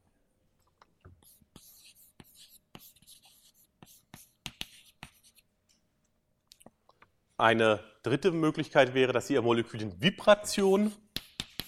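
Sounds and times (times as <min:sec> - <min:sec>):
scratchy writing during a lecture on molecules: 0:01.2 - 0:05.5, 0:10.7 - 0:11.6
speech: 0:07.4 - 0:11.0.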